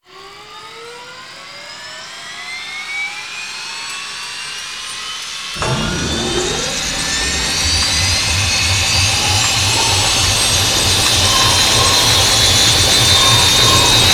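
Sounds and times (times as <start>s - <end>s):
laser startup: 5.6s - 14.1s.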